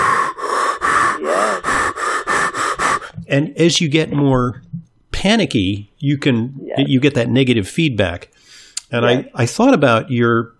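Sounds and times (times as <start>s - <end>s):
voice imitating ragged breathing through scuba breathing apparatus: 0.0s - 3.5s
speech: 3.3s - 8.3s, 8.9s - 10.5s.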